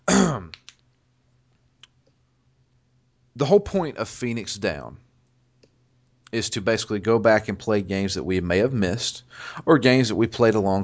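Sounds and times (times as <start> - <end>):
person harshly clearing their throat: 0.0 - 0.5
speech: 3.4 - 5.0, 6.3 - 10.8.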